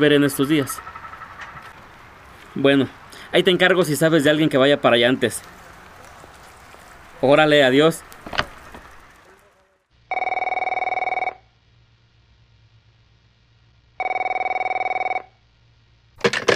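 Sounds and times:
speech: 0:00.0 - 0:00.9, 0:02.6 - 0:05.6, 0:07.2 - 0:08.4
unanswered telephone ringing electronically: 0:10.1 - 0:11.4, 0:14.0 - 0:15.3.

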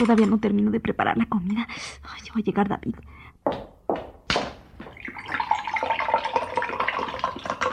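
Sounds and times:
speech: 0:00.0 - 0:03.7
eggs cracking: 0:04.3 - 0:07.7
orange juice pouring and sloshing: 0:04.8 - 0:07.7.

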